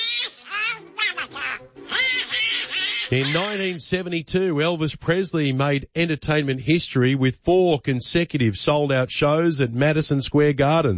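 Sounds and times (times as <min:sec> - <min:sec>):
cartoon duck voice quacking: 0:00.0 - 0:03.8
speech: 0:03.1 - 0:10.9.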